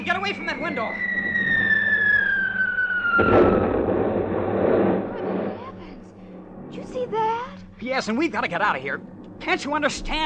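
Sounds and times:
speech: 0.0 - 1.2, 3.2 - 3.8, 7.0 - 10.2
high falling whine: 0.0 - 10.2
anti-aircraft gunfire opening up on aircraft: 2.9 - 6.0.

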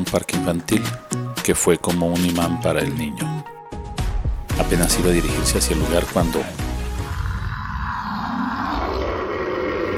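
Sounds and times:
speech: 0.1 - 3.5, 4.6 - 6.7
fierce dog roaring growl: 6.8 - 9.9.

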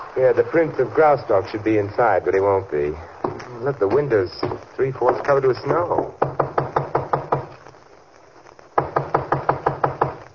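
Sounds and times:
speech: 0.2 - 6.4
firm rapid knocking on a door: 5.9 - 7.5, 8.8 - 10.2.

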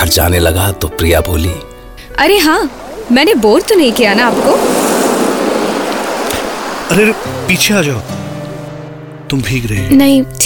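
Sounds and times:
speech: 0.1 - 4.8, 6.9 - 8.2, 9.3 - 10.4
ocean waves washing onto the shore: 2.1 - 9.6.

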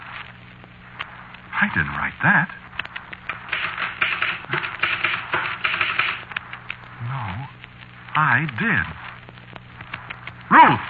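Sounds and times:
speech: 1.6 - 2.6, 8.2 - 9.0, 10.5 - 10.8
mechanical typewriter typing: 3.3 - 6.3.

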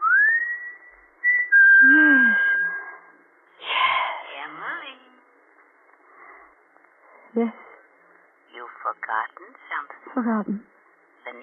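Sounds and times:
person whistling a signal: 0.0 - 3.0
speech: 7.4 - 7.6, 9.1 - 11.4.

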